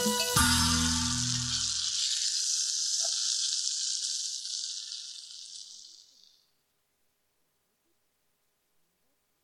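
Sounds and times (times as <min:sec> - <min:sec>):
sausages sizzling in a frying pan: 0:00.1 - 0:06.5.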